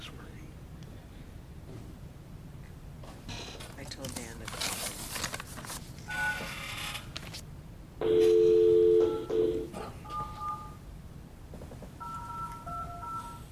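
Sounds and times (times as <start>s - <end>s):
rustling handling noise: 3.0s - 6.1s
phone keypad dialing tones: 8.0s - 10.8s, 12.0s - 13.5s.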